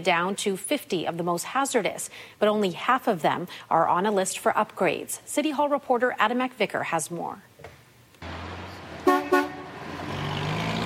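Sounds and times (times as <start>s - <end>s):
speech: 0.0s - 7.5s
traffic rumbling at a three-way stop in Martindale Calgary: 8.2s - 10.8s
car horn honks: 9.0s - 9.8s.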